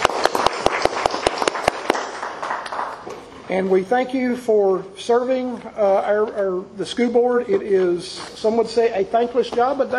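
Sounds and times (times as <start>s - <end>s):
modest crowd applauding: 0.0s - 3.1s
speech: 3.5s - 9.9s.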